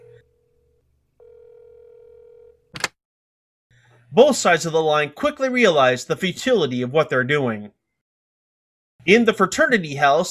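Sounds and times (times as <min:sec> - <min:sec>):
electronic telephone ring tone through a handset: 0:00.0 - 0:00.4, 0:01.2 - 0:02.6
speech: 0:04.1 - 0:07.8, 0:09.0 - 0:10.2.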